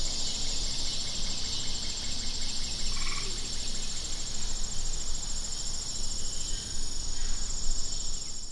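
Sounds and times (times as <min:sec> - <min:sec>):
cicada song: 0:00.0 - 0:08.5.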